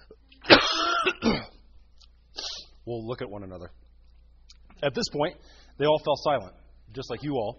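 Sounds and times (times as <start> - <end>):
person coughing during a talk in front of an audience: 0.0 - 1.6
speech: 2.9 - 3.9, 4.8 - 7.5.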